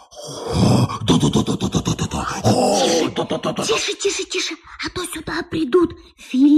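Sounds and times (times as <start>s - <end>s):
voice making an exaggerated imitation of a sneaky spy's snoring: 0.2s - 3.8s
speech: 0.2s - 6.5s.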